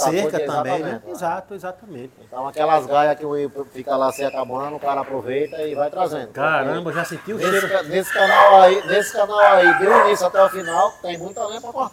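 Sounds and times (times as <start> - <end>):
speech: 0.0 - 11.9
dogs yelping and barking: 6.8 - 11.3.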